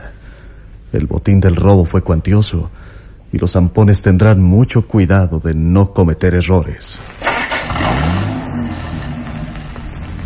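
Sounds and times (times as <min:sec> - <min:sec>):
speech: 0:00.9 - 0:08.3
car engine starting and revving as the car pulls away: 0:07.0 - 0:10.2.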